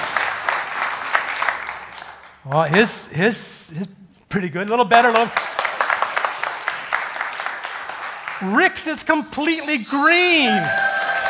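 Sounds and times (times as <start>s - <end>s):
audience clapping: 0.0s - 3.1s, 4.7s - 9.4s, 10.0s - 11.2s
speech: 2.4s - 5.5s, 8.4s - 10.9s.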